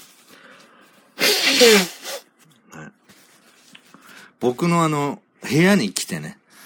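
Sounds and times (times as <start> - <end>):
nose blowing: 1.2 - 2.3
speech: 1.6 - 2.0, 4.4 - 6.4.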